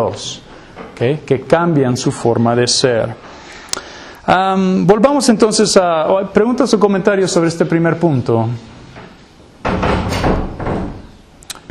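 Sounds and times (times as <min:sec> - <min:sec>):
speech: 0:00.0 - 0:03.3, 0:04.3 - 0:08.8
door banging shut: 0:09.0 - 0:11.6.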